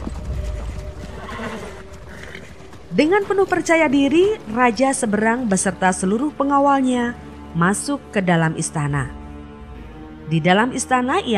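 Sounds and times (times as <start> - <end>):
cavalry horse whinnying: 0.0 - 3.0
hooves of many cavalry horses clip-clopping: 0.0 - 7.9
speech: 3.0 - 9.2, 10.3 - 11.3.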